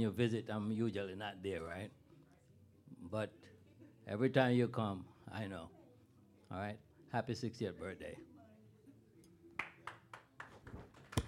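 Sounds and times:
speech: 0.0s - 2.0s, 3.0s - 5.8s, 6.5s - 8.3s
small group of party guests clapping at a 60th birthday celebration: 9.6s - 11.2s.

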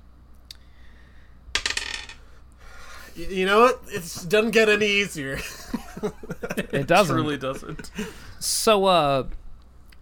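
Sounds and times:
dice tumbling and bouncing across a surface: 1.6s - 2.2s
speech: 3.2s - 9.4s
laughter: 5.4s - 8.2s.

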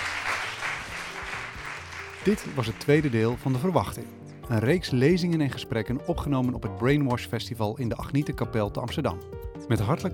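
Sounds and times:
audience applause: 0.0s - 3.8s
speech: 2.2s - 10.1s.

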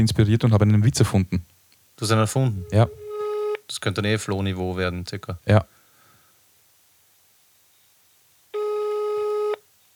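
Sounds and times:
speech: 0.0s - 3.0s, 3.7s - 5.8s
telephone busy tone: 2.6s - 3.6s, 8.6s - 9.6s.

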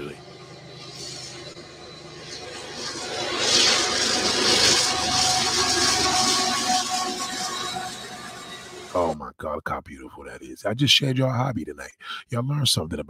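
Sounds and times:
freight train passing: 0.0s - 9.0s
speech: 10.6s - 13.0s.

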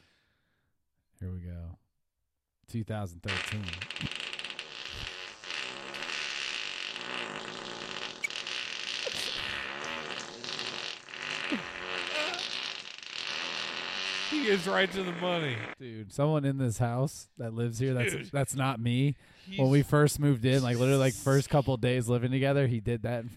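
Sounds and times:
speech: 1.2s - 1.8s, 2.7s - 4.2s, 14.4s - 23.3s
long loud fart: 3.3s - 15.8s.

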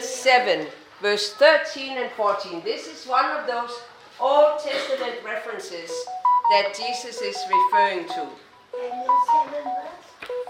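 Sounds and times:
speech: 0.2s - 10.4s
phone emitting short electronic beeps: 5.8s - 10.4s.

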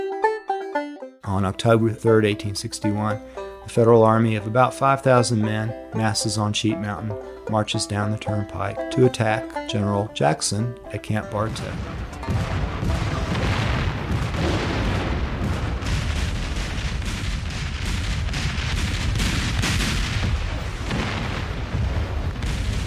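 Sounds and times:
speech: 1.3s - 12.5s
cannon and artillery fire in a battle bombardment: 11.4s - 22.8s
constant low rumble of a battle bombardment: 11.8s - 18.4s.

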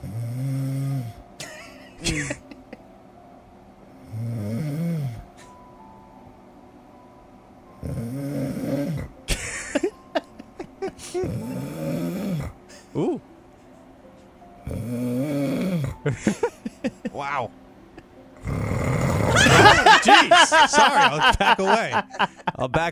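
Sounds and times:
loud rasping snoring: 0.0s - 1.2s, 4.0s - 5.3s, 7.8s - 9.2s, 11.2s - 12.6s, 14.6s - 16.2s, 18.4s - 19.9s
laughter: 1.4s - 2.8s, 9.3s - 11.3s, 16.1s - 17.3s, 19.3s - 22.9s
speech: 2.1s - 2.5s, 20.5s - 22.9s
person exclaiming: 17.1s - 17.5s.

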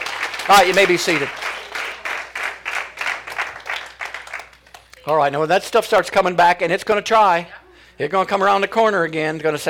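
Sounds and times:
audience at a morning service applauding: 0.0s - 5.0s
speech: 0.5s - 1.5s, 5.0s - 9.6s.

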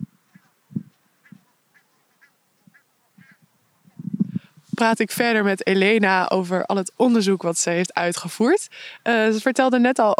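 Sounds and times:
geese honking: 0.0s - 3.8s
speech: 4.8s - 10.1s.

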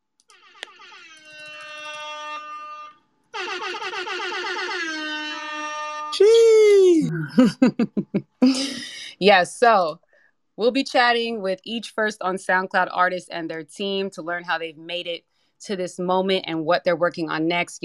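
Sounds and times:
air horn blasts: 0.3s - 6.2s
laughter: 6.8s - 9.1s
speech: 7.1s - 10.0s, 10.6s - 17.8s.

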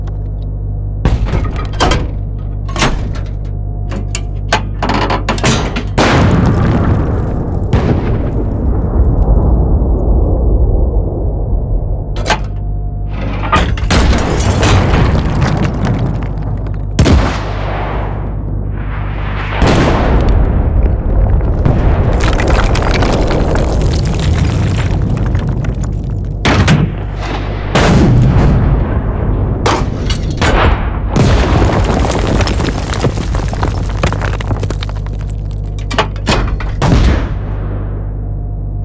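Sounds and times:
constant deep rumble: 0.0s - 38.8s
mechanical clatter: 1.1s - 6.2s, 12.2s - 16.9s, 34.0s - 37.1s
crackling debris: 1.1s - 11.5s, 12.2s - 18.2s, 19.4s - 37.6s
tank fire: 5.4s - 10.2s, 13.5s - 38.2s
loud explosions: 5.9s - 12.6s, 13.6s - 35.6s, 36.3s - 38.2s.

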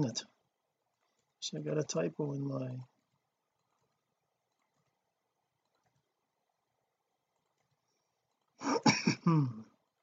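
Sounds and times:
speech: 0.0s - 0.3s, 1.4s - 2.9s, 8.6s - 9.7s
throat clearing: 8.6s - 9.7s.

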